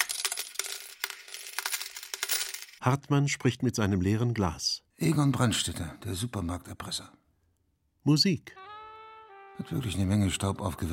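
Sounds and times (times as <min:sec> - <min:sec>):
coins falling into a gambling machine slot: 0:00.0 - 0:02.8
speech: 0:02.8 - 0:07.2, 0:08.0 - 0:08.6, 0:09.6 - 0:10.9.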